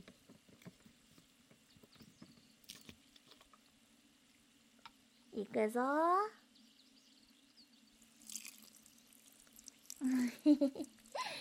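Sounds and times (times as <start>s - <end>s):
low steady hum: 0.0s - 11.4s
speech: 5.4s - 6.4s, 10.4s - 11.0s
plain water pouring and trickling to rinse: 7.9s - 11.4s.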